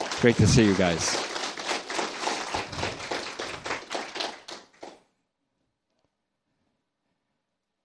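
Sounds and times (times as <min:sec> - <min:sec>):
crowd applauding: 0:00.0 - 0:05.0
speech: 0:00.2 - 0:01.3.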